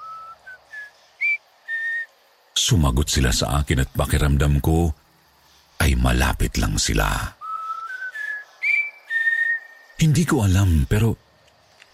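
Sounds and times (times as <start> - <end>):
person whistling short clear tonal notes: 0.0 - 2.1, 7.4 - 10.0
speech: 2.6 - 5.0, 5.8 - 7.4, 10.0 - 11.2.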